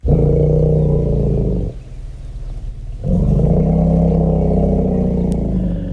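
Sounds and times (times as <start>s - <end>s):
deep throaty elephant greeting rumble: 0.0s - 5.9s.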